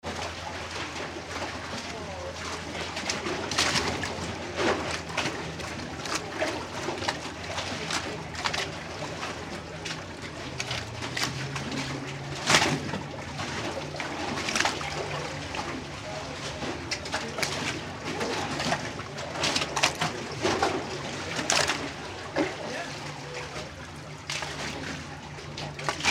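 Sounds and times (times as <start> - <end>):
River Thames water under a pub in London UK: 0.0 - 26.0.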